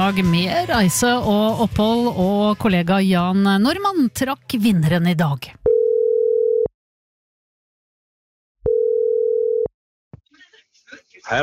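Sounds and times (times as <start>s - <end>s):
speech: 0.1s - 5.6s
telephone ringback tone on an outgoing call: 5.7s - 6.7s, 8.6s - 9.7s.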